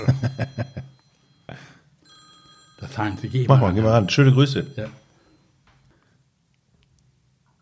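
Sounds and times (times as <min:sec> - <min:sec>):
laughter: 0:00.0 - 0:00.9
telephone bell ringing with a bright metallic trill: 0:00.0 - 0:06.0
speech: 0:03.0 - 0:05.0.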